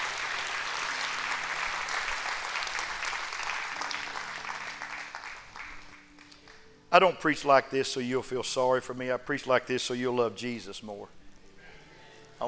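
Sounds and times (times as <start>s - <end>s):
large standing church audience clapping: 0.0s - 6.8s
speech: 6.9s - 11.2s.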